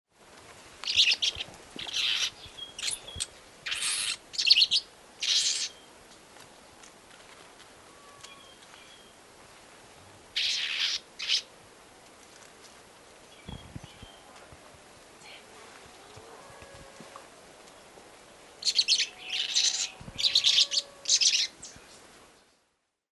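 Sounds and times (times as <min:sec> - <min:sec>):
small tree finch: 0:00.8 - 0:06.0, 0:08.0 - 0:09.2, 0:10.4 - 0:11.5, 0:13.2 - 0:14.4, 0:17.6 - 0:22.6.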